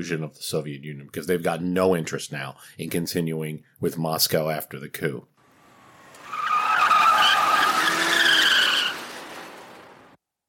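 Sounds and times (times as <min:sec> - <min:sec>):
speech: 0:00.0 - 0:05.3
car moving along a road: 0:05.4 - 0:10.2
car tires squealing: 0:05.5 - 0:10.2.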